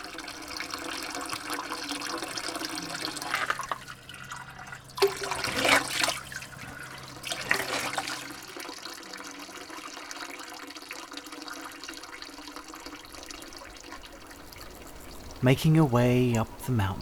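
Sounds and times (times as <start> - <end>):
spring water running and splashing: 0.0 - 17.0
speech: 15.4 - 17.0.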